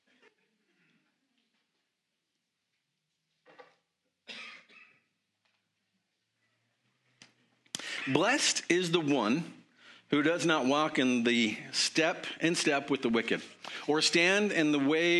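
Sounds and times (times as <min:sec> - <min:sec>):
speaker coughing at a church worship service: 0:04.2 - 0:05.1
speech: 0:08.1 - 0:15.1.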